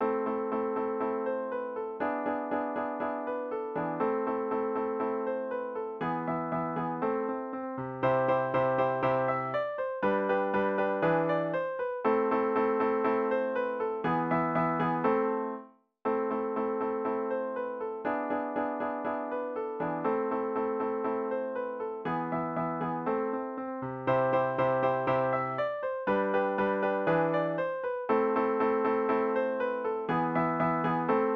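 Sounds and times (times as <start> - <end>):
Russian folk song on piano: 0.0 - 31.3.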